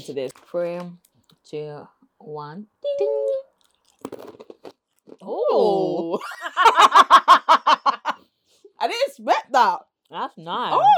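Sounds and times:
speech: 0.0s - 3.4s, 5.2s - 7.3s, 8.8s - 10.9s
crunching of a crispy sesame sweet potato stick with black sesame seeds: 3.6s - 5.2s
laughter: 6.1s - 8.2s.

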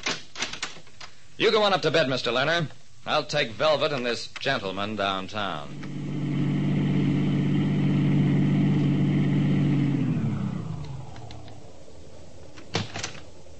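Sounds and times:
speech: 1.4s - 6.0s
car engine droning as the vehicle pulls away fast: 5.7s - 13.5s.

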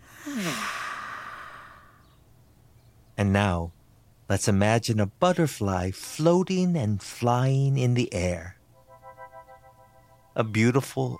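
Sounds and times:
slow breath out through the mouth during a calming breathing exercise: 0.0s - 2.2s
speech: 3.4s - 8.6s, 10.4s - 11.1s.

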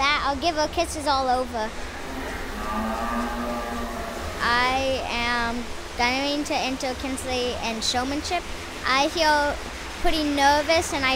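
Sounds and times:
speech: 0.3s - 1.9s, 4.4s - 11.1s
cow mooing: 1.7s - 4.7s.

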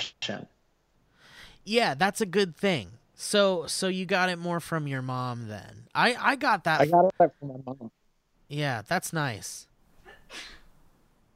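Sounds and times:
speech: 0.3s - 0.6s, 1.6s - 9.7s, 10.3s - 10.6s
single sneeze with airy intake and hissing burst: 10.1s - 10.7s.

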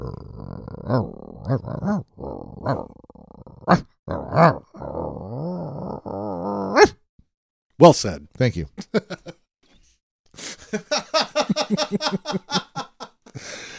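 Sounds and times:
person imitating dog growls and barking yelps: 0.0s - 7.0s
speech: 0.9s - 3.0s, 3.7s - 4.6s, 7.8s - 9.2s
laughter: 8.8s - 9.4s, 10.4s - 13.2s.

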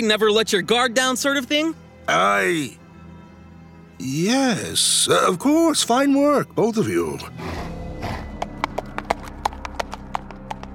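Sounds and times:
speech: 0.0s - 2.8s, 4.0s - 7.6s
hooves of a galloping centaur clip-clopping: 8.0s - 10.7s.

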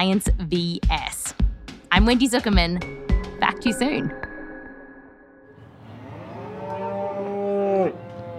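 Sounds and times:
speech: 0.0s - 3.0s, 3.6s - 4.3s
cow mooing: 5.8s - 8.3s.

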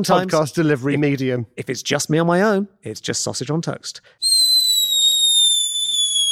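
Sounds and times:
speech: 0.0s - 4.2s
firework screaming through the air with high-pitched whistle: 4.2s - 6.3s.

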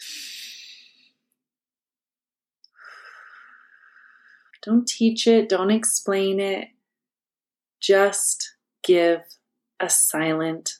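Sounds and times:
person demonstrating slow deep breathing: 2.7s - 4.6s
speech: 4.6s - 6.8s, 7.8s - 10.7s.

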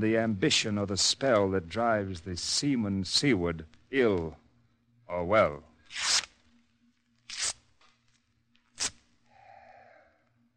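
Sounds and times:
speech: 0.0s - 4.4s, 5.1s - 6.2s
letter paper burning and crackling: 5.8s - 9.2s.

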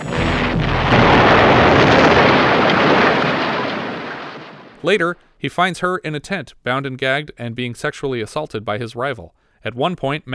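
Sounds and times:
brief tonal hum: 0.0s - 4.8s
sustained rumbling roar: 0.0s - 4.8s
explosion: 0.0s - 5.0s
speech: 4.8s - 10.3s.

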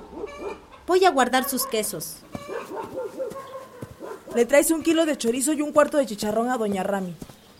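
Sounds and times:
dog barking and yipping with whining: 0.0s - 0.7s, 1.4s - 4.5s
speech: 0.4s - 2.5s, 4.4s - 7.4s.

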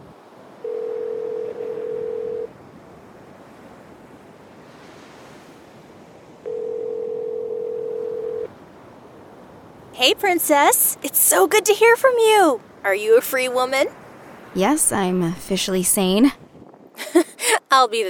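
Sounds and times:
low continuous hiss: 0.0s - 18.0s
ringback tone of an outgoing phone call placed by a voice assistant: 0.6s - 2.5s, 6.4s - 8.5s
speech: 10.0s - 14.0s, 14.6s - 16.4s, 17.7s - 18.0s.

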